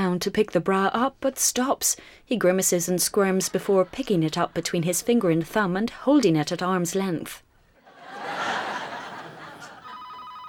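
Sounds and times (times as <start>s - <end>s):
speech: 0.1s - 7.4s
laughter: 7.8s - 10.2s
telephone ringing with steady electronic tone: 9.7s - 10.4s.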